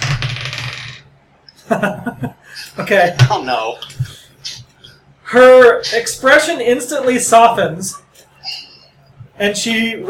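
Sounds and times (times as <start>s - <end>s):
small twenty-sided die rolling on a hard tabletop: 0.0s - 1.1s
speech: 1.7s - 4.1s, 5.3s - 8.0s, 9.4s - 10.0s.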